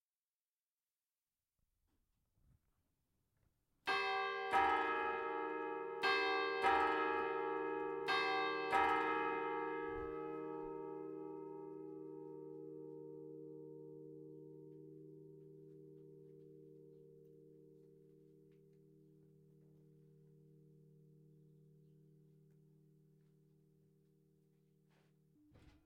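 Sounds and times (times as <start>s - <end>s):
church bells chiming quarters in Ettiswil: 3.9s - 23.2s.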